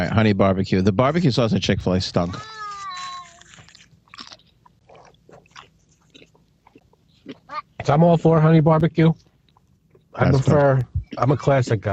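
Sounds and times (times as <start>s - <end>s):
speech: 0.0s - 2.6s, 7.9s - 9.3s, 10.2s - 11.9s
wet crunchy chewing and biting on food: 2.7s - 8.0s, 9.1s - 11.4s.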